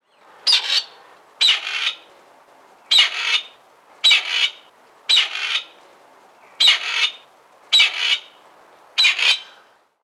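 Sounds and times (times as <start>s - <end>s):
grey partridge calling: 0.5s - 2.1s, 2.9s - 5.8s, 6.6s - 8.4s, 9.0s - 9.6s.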